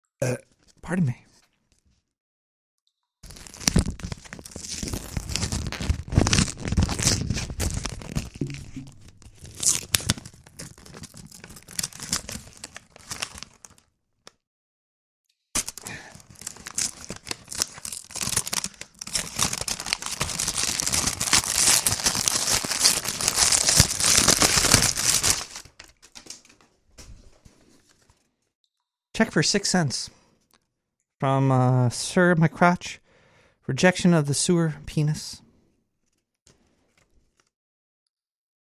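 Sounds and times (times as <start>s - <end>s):
speech: 0.2s - 1.3s, 29.4s - 30.2s, 31.2s - 33.0s, 33.7s - 35.4s
paper tearing as an envelope is ripped open: 3.2s - 13.8s, 15.6s - 26.0s.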